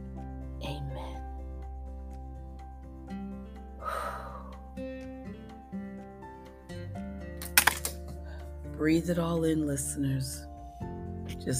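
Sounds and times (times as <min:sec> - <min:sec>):
steady sustained music: 0:00.0 - 0:11.5
eyeglasses falling and crashing onto a hard surface: 0:07.4 - 0:08.2
speech: 0:08.8 - 0:10.5.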